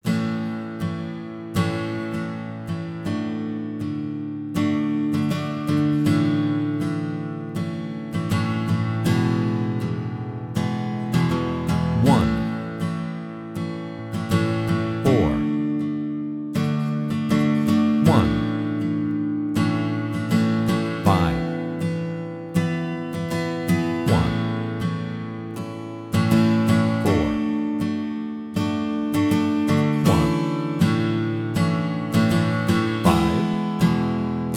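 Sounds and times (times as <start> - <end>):
guitar playing I IV I V chord progression in A: 0.0 - 34.5.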